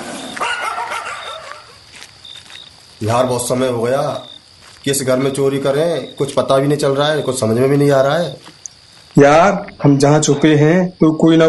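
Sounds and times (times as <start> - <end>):
dogs barking: 0.0 - 2.1
speech: 3.0 - 8.6, 9.2 - 11.4.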